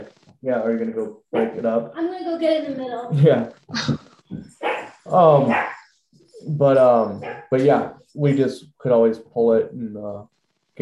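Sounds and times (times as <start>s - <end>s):
speech: 0.4s - 4.0s, 5.1s - 5.7s, 6.4s - 10.8s
coyotes yipping and snarling in a scuffle: 3.7s - 8.4s.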